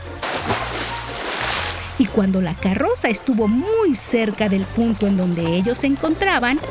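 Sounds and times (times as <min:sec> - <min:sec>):
water splashing as a boy enters a river: 0:00.1 - 0:02.3
speech: 0:02.0 - 0:06.7.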